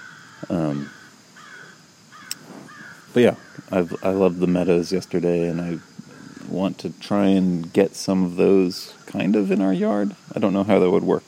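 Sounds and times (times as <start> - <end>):
crow cawing outdoors near a yard: 0.0 - 4.4, 5.4 - 6.6
quiet noise: 0.0 - 11.2
speech: 0.4 - 1.0, 3.2 - 5.9, 6.6 - 11.2.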